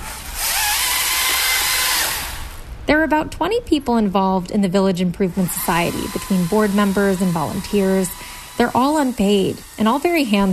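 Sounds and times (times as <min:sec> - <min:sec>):
electric chainsaw cutting: 0:00.0 - 0:02.6, 0:05.2 - 0:10.5
speech: 0:02.9 - 0:10.5.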